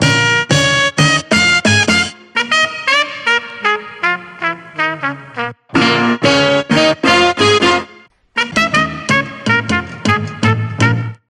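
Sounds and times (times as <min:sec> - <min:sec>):
horn stabs: 0:00.0 - 0:11.2.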